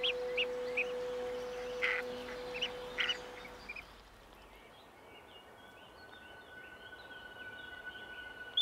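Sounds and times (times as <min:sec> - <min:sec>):
goosander chicks calling before hatching: 0:00.0 - 0:03.8
steady low drone: 0:00.0 - 0:08.6.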